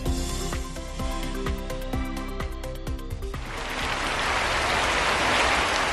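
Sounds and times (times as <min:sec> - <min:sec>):
rhythmic music: 0:00.0 - 0:04.9
steady rain falling: 0:03.4 - 0:05.9.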